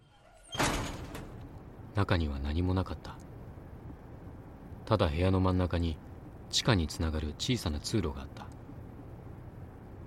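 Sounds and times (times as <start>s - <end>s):
entrance door being opened: 0.0s - 1.6s
speech: 2.0s - 3.2s, 4.9s - 8.6s.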